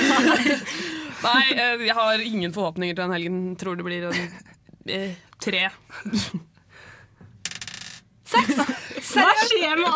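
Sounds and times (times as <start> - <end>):
laughter: 0.0 - 1.4, 8.3 - 9.9
speech: 1.2 - 6.5, 8.3 - 9.9
die rolling and clattering on a hard table: 7.4 - 8.0.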